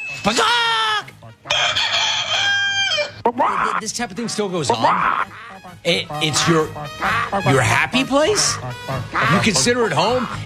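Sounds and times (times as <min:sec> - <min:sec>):
speech: 0:00.2 - 0:00.8, 0:03.3 - 0:10.4
rooster crowing: 0:01.4 - 0:03.2.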